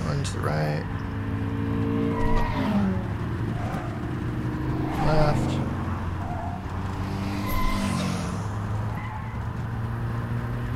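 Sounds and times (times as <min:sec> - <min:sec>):
video game car engines droning: 0:00.0 - 0:10.7
speech: 0:00.3 - 0:01.1
video game car tire skids and squeals: 0:01.6 - 0:10.0.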